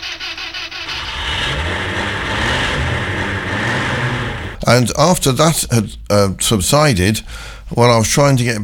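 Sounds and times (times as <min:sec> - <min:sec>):
neighbour's car engine starting and revving: 0:00.0 - 0:04.7
speech: 0:04.7 - 0:08.6.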